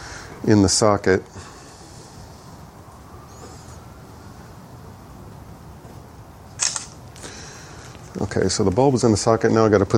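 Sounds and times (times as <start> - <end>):
faint hiss: 0.0 - 9.9
speech: 0.4 - 1.5, 8.4 - 9.9
camera shutter clicks: 6.5 - 7.0.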